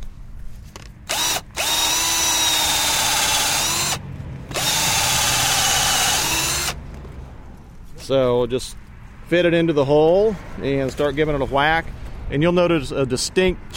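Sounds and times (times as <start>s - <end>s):
power drill whining as it bores into material: 1.1s - 6.8s
speech: 8.1s - 13.7s.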